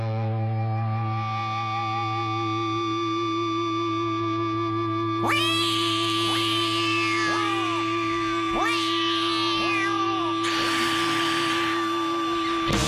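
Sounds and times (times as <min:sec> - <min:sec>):
steady humming drone: 0:00.1 - 0:12.8
voice imitating cat meows in a song intro: 0:05.2 - 0:12.8.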